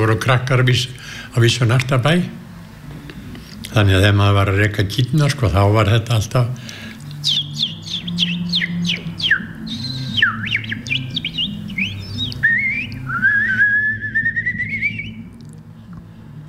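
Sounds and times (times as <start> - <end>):
speech: 0.0 - 2.4, 3.7 - 7.4
unidentified bird singing chirping whistles: 7.0 - 15.3.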